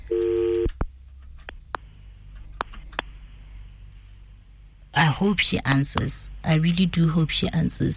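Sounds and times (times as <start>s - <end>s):
buzzy phone tone of a redialled telephone call: 0.0s - 0.7s
faint hum: 0.0s - 7.9s
speech: 5.2s - 7.9s.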